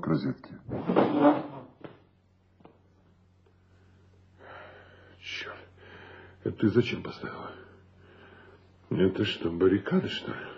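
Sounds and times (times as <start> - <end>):
low steady hum: 0.0 - 10.5
speech: 0.1 - 1.5, 6.4 - 7.6, 8.9 - 10.5
wardrobe door scraping open: 0.7 - 1.8.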